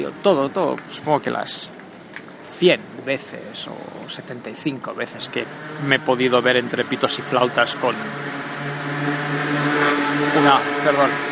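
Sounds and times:
speech: 0.0 - 1.8, 2.6 - 9.1, 10.2 - 11.3
modified motorcycle engine revving as it passes: 5.0 - 11.3.

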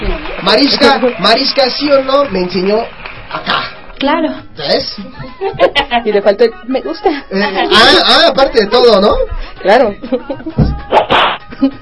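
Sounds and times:
speech: 0.4 - 11.8
laughter: 5.0 - 6.2, 6.9 - 8.2, 9.9 - 10.8, 11.4 - 11.8
slap on the face: 10.6 - 11.5
rough burst of noise: 10.9 - 11.5.

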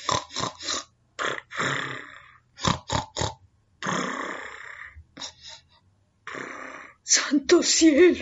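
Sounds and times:
snoring with rattling, snorting inhales and breathy exhales: 0.0 - 5.6, 6.2 - 7.0
speech: 7.2 - 8.2.

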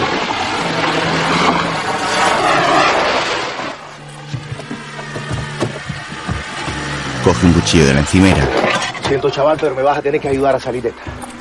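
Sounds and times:
police car engine approaching: 0.1 - 9.0
faint wavering tones: 0.1 - 11.3
speech: 7.3 - 11.1.

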